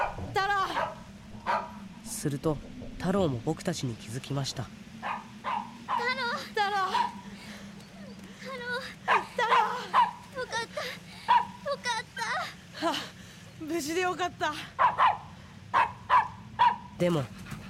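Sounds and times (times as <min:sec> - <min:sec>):
dog barking fiercely at a van beside a mountain road: 0:00.0 - 0:01.9, 0:05.0 - 0:06.2, 0:09.1 - 0:10.2, 0:11.3 - 0:11.6, 0:14.8 - 0:17.0
steady low hum: 0:00.0 - 0:17.6
speech: 0:02.2 - 0:04.8, 0:13.9 - 0:15.2, 0:17.0 - 0:17.4.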